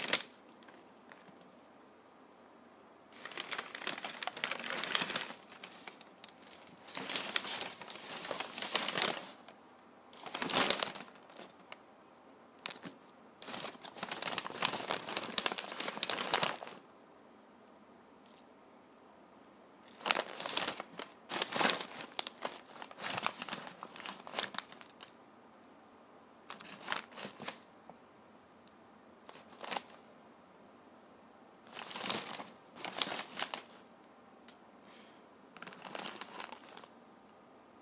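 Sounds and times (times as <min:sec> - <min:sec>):
paper crumpled into a ball: 0:00.0 - 0:01.5, 0:03.1 - 0:09.6, 0:10.2 - 0:11.8, 0:12.6 - 0:16.9, 0:19.8 - 0:25.2, 0:26.5 - 0:27.7, 0:29.2 - 0:30.0, 0:31.7 - 0:33.9, 0:35.6 - 0:36.9.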